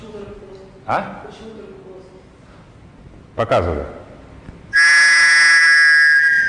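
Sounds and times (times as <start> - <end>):
speech: 0.9 - 1.7, 3.4 - 4.0
flat basketball referee's whistle blast: 4.8 - 6.4.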